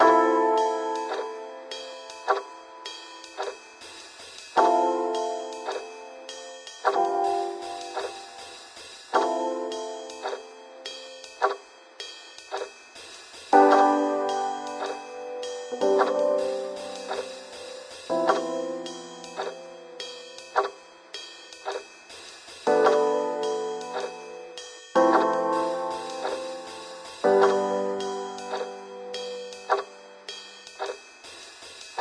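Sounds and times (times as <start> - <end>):
piano loop: 0.0 - 3.9, 4.6 - 11.8, 13.6 - 21.3, 22.7 - 30.5.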